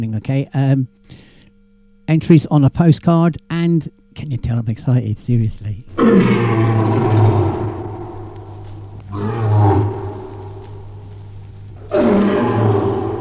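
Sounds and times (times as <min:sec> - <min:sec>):
speech: 0:00.0 - 0:01.3, 0:02.1 - 0:07.2
lion roaring: 0:05.9 - 0:13.1.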